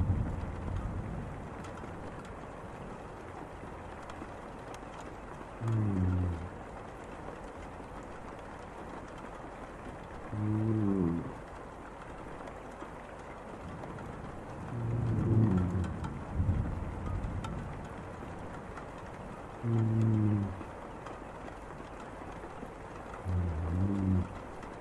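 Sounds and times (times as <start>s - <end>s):
soft rain pattering against a window: 0.0s - 24.7s.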